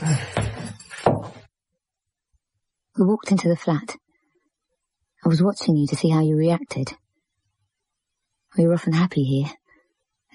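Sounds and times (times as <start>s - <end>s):
stiff door shoved open with two hands at the top of steep stairs: 0.4s - 1.5s
speech: 3.0s - 4.0s, 5.2s - 7.0s, 8.5s - 9.6s.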